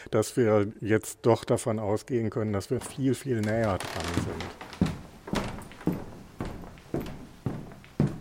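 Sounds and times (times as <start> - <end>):
speech: 0.1 - 4.7
footsteps climbing a staircase: 2.8 - 8.2.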